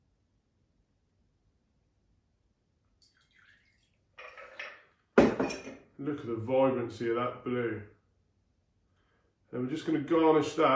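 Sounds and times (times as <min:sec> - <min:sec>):
strained cocktail pouring into a glass: 0:03.0 - 0:04.9
speech: 0:06.0 - 0:08.0, 0:09.5 - 0:10.7.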